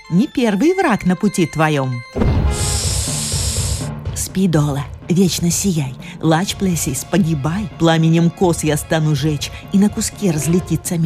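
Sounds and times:
speech: 0.1 - 2.7, 4.4 - 11.0
low droning musical backing: 0.1 - 11.0
vipers hissing: 2.6 - 3.9.

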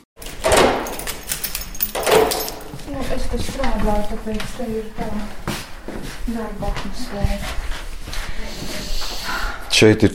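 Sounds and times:
heavy vault safe door being opened: 0.2 - 2.8
speech: 2.9 - 7.6, 9.8 - 10.1.

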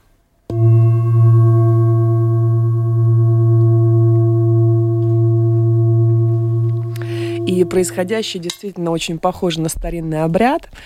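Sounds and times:
seven-metal Tibetan singing bowl rubbed with pine or rosewood stick: 0.5 - 8.7
speech: 7.6 - 10.8.

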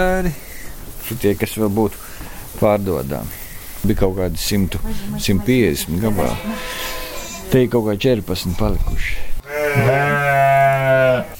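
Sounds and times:
speech: 0.0 - 10.1
long drawn-out sheep bleat: 4.8 - 7.7, 9.4 - 11.3.

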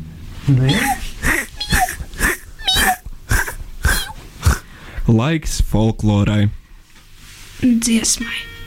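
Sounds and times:
speech: 0.5 - 1.0, 5.1 - 6.6, 7.6 - 8.5
faint squeaky cat-like tones: 0.6 - 4.6.

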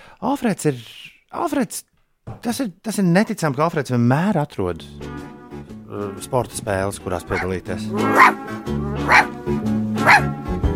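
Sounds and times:
speech: 0.2 - 5.2, 5.9 - 10.4
dog barking: 7.3 - 9.4, 10.0 - 10.4.

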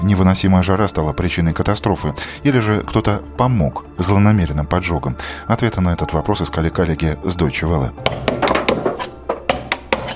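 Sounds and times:
speech: 0.0 - 8.5
knocks on wood while repairing a jammed wooden door: 8.0 - 10.1.

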